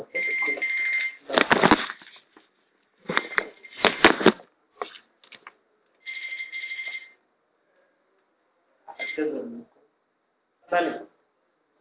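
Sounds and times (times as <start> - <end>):
mobile phone ringing with a steady electronic tone: 0.2 - 1.3, 6.1 - 7.2
scattered clattering noises: 1.3 - 5.5
speech: 10.7 - 11.1.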